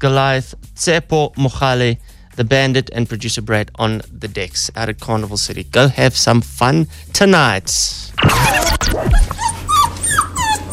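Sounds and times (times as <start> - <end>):
speech: 0.0 - 9.6
dog whimpering and whining: 8.2 - 10.7.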